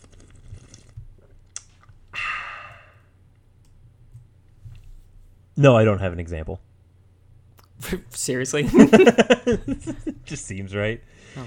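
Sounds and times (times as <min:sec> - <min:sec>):
person sipping water: 0:00.0 - 0:03.1
soft exhale: 0:02.2 - 0:03.1
speech: 0:05.6 - 0:06.7, 0:07.9 - 0:11.4
laughter: 0:08.6 - 0:10.2.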